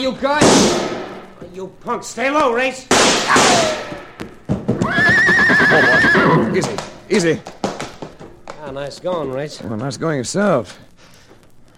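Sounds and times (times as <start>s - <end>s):
speech: 0.0s - 4.1s, 4.9s - 7.6s, 8.7s - 10.8s
horse hoof thuds and clatters: 4.2s - 5.2s, 6.6s - 10.0s
horse whinnying with a long wavering neigh: 4.8s - 6.8s.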